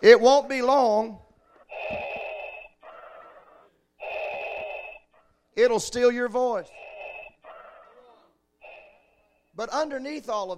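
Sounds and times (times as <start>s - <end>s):
speech: 0.0s - 1.2s, 5.6s - 6.8s, 9.6s - 10.5s
voice imitating raspy respirator-mask breathing: 1.5s - 5.3s, 6.5s - 9.6s.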